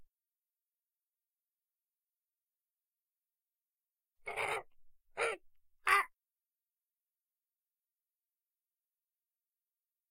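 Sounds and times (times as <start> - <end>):
parrot giving harsh raspy squawks: 4.3 - 4.6.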